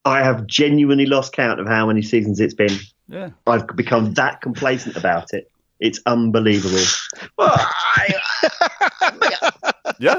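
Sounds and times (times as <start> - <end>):
speech: 0.0 - 10.1
person yawning: 3.1 - 3.4, 10.0 - 10.1
short breathy vocal bursts: 3.1 - 3.4
laughter: 6.5 - 10.1.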